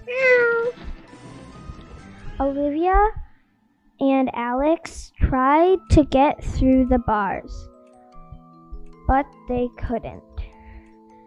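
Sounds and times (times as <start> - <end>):
cat meowing: 0.0 - 0.9
speech: 2.4 - 3.2, 4.0 - 7.7, 9.1 - 10.3.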